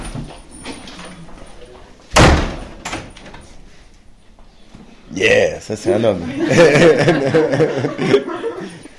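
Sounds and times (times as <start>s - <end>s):
heavy thud of a door pushed open: 2.1s - 3.2s
speech: 5.1s - 8.4s
laughter: 6.0s - 8.9s.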